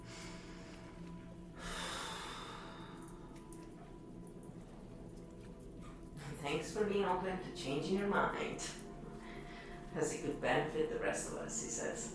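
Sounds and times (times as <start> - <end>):
deep breath: 0.0 - 3.3
speech: 6.4 - 8.8, 10.0 - 12.1.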